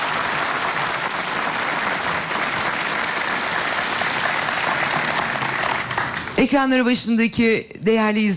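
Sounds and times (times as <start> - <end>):
large audience applauding an orchestra: 0.0 - 6.4
speech: 6.4 - 8.3.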